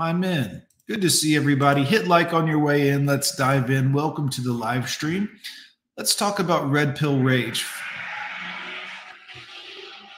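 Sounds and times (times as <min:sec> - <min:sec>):
speech: 0:00.0 - 0:08.0
car tires squealing: 0:07.6 - 0:10.1.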